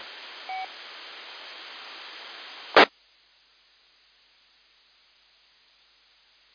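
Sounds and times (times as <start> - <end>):
steady telephone-line hiss: 0.0 - 2.9.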